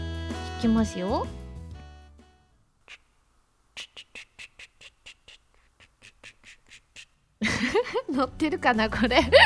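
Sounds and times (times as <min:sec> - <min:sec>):
speech: 0:00.6 - 0:01.4, 0:07.6 - 0:09.4
voice imitating an oriental turtle dove call: 0:02.8 - 0:03.2, 0:03.8 - 0:07.2
laughter: 0:07.4 - 0:08.1.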